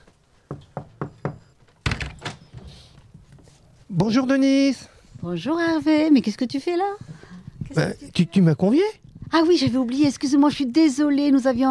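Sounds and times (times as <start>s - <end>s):
knocking on a door: 0.5s - 2.2s
speech: 3.9s - 7.1s, 7.8s - 11.6s.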